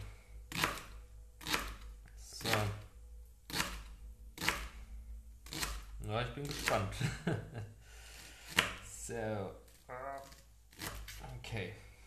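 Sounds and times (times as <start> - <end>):
knife slicing an onion into fine rings on a cutting board: 0.5 - 2.8, 3.5 - 4.8, 5.4 - 7.0, 8.2 - 9.0, 10.2 - 11.3
speech: 6.1 - 7.8, 8.6 - 10.1, 11.5 - 11.8
laughter: 7.0 - 7.7.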